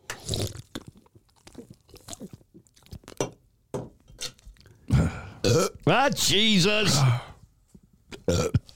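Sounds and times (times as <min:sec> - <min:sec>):
loud guttural belch: 0:04.9 - 0:05.8, 0:08.2 - 0:08.7
speech: 0:05.5 - 0:07.3.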